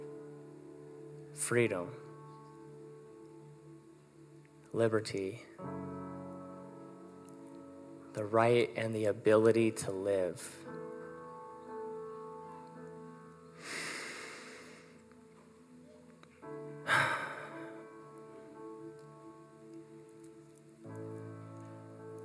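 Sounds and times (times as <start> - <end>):
speech: 1.4 - 2.1, 4.7 - 5.8, 8.2 - 10.8
long deep breath drawn in: 13.6 - 15.0, 16.9 - 17.8
sharp forceful exhale: 13.6 - 15.0.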